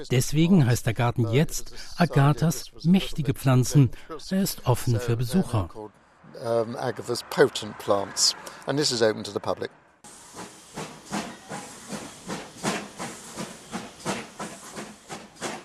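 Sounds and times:
speech: 0.0s - 9.8s
historic steam train chuffing and hissing steam pulling out of station: 10.1s - 15.6s.

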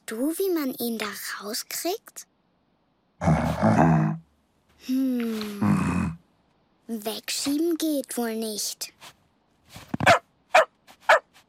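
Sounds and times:
speech: 0.1s - 2.3s, 3.2s - 4.2s, 4.8s - 5.8s, 6.9s - 10.2s
bear growling: 3.2s - 4.3s, 5.3s - 6.3s.

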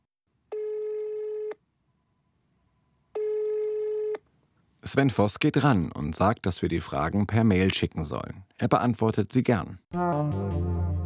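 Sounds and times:
telephone ringback tone of an outgoing call: 0.5s - 1.6s, 3.2s - 4.2s
speech: 4.9s - 11.0s.

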